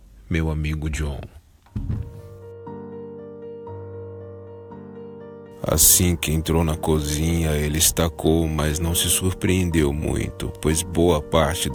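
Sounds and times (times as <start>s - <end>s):
speech: 0.3s - 1.9s, 5.6s - 11.7s
long steady groaning creak of a door swinging: 1.6s - 2.5s
dull thunk of a door latch: 1.7s - 2.4s.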